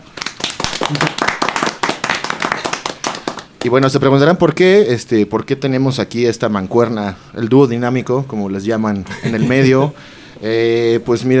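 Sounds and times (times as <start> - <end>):
small group clapping hands: 0.0 - 4.0
speech: 0.9 - 1.4, 3.6 - 11.3
laughter: 9.0 - 9.9.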